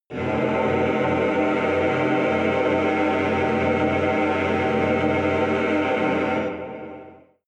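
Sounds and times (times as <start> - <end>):
evil choir singing a dissonant chord: 0.1 - 7.4.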